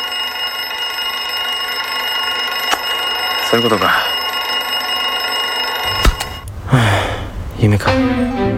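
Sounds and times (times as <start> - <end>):
alarm clock ringing with loud metallic buzzing: 0.0 - 6.5
speech: 3.5 - 4.1, 6.7 - 7.0, 7.6 - 8.5.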